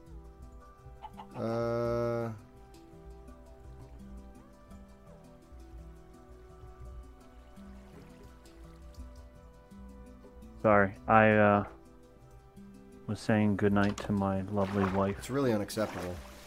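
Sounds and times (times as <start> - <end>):
chickens clucking: 0.8 - 1.6
chicken squawk: 1.0 - 1.6
steady rain-like rustling background: 2.3 - 11.0, 11.7 - 16.4
speech: 10.6 - 11.8, 13.1 - 16.3.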